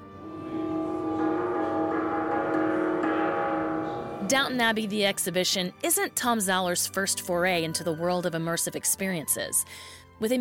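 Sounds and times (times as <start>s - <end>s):
dressing gong struck and ringing: 0.0s - 5.7s
speech: 4.3s - 10.3s.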